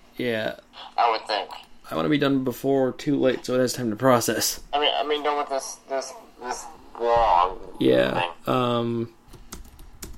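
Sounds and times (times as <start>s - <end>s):
speech: 0.2s - 9.2s
voiced sound: 4.7s - 8.7s
typing on a computer keyboard: 9.3s - 10.1s.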